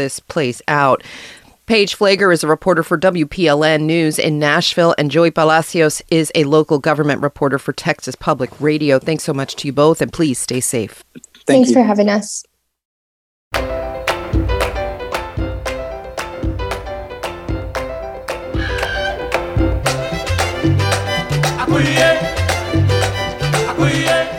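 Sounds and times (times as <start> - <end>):
speech: 0.0 - 12.5
1970s New York salsa music: 13.5 - 24.3.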